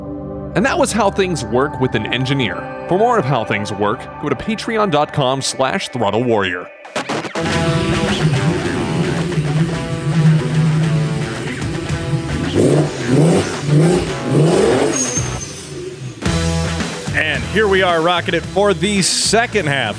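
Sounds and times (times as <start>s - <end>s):
speech: 0.5s - 8.3s, 17.4s - 19.9s
car engine revving and accelerating: 7.4s - 17.6s.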